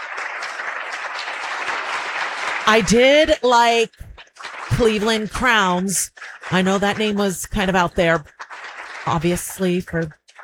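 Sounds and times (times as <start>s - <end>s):
audience applause at a live event: 0.0s - 4.8s, 7.7s - 10.4s
speech: 2.7s - 4.0s, 4.8s - 8.4s, 9.0s - 10.2s.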